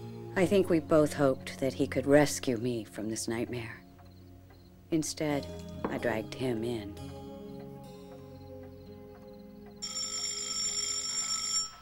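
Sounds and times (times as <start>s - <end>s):
speech: 0.4s - 3.8s, 4.9s - 7.0s
telephone ringing with electronic trill: 9.8s - 11.8s.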